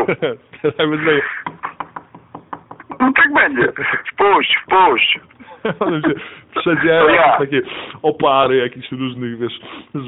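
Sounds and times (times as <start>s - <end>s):
speech: 0.0s - 1.7s, 3.0s - 10.0s
laughter: 0.0s - 1.8s, 5.4s - 7.4s
knocking on a door: 1.4s - 3.0s.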